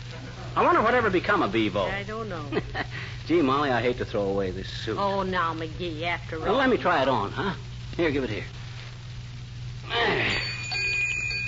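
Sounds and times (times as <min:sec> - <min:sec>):
speech: 0:00.6 - 0:08.6
small bell ringing: 0:10.1 - 0:11.4.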